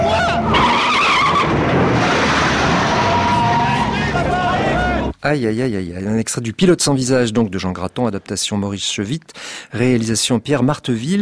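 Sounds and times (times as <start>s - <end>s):
Ferrari race car skidding on a bend: 0.0s - 5.1s
tire squeal: 0.0s - 5.1s
speech: 5.2s - 11.2s.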